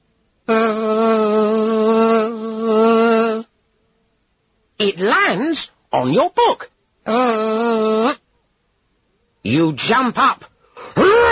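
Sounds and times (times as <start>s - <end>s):
bee buzzing: 0.5s - 3.5s, 7.1s - 8.2s
speech: 4.8s - 8.2s, 9.4s - 11.3s.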